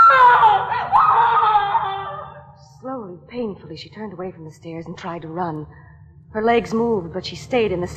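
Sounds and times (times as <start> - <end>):
woman screaming in terror: 0.0 - 2.5
speech: 3.6 - 7.9.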